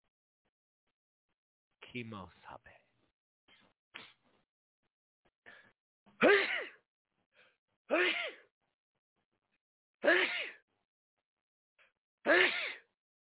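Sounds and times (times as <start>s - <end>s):
speech: 1.9s - 2.8s, 12.2s - 12.6s
loud sneezes: 6.2s - 6.8s, 10.0s - 10.6s, 12.3s - 12.8s.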